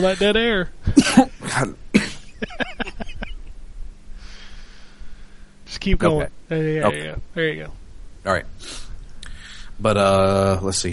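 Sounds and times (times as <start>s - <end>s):
speech: 0.0s - 2.8s, 5.8s - 8.8s, 9.8s - 10.9s
harsh broadband coughs: 0.9s - 2.2s
laughter: 1.0s - 3.5s
faint breathy hiss: 4.0s - 5.8s, 8.5s - 10.5s.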